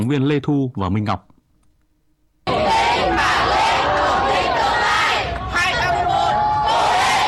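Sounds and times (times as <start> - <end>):
speech: 0.0 - 1.3
crowd cheering students leaving exam: 2.4 - 7.2
voices shouting encouragement: 2.5 - 7.2.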